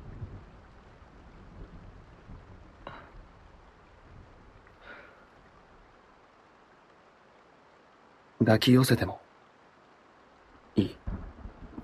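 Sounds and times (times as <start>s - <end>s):
low rolling rumbles of thunder: 0.0s - 4.8s, 10.8s - 11.8s
brief brighter crackles of thunder: 0.0s - 6.0s, 10.8s - 11.8s
steady rain: 0.0s - 11.8s
speech: 8.4s - 9.3s, 10.8s - 11.0s.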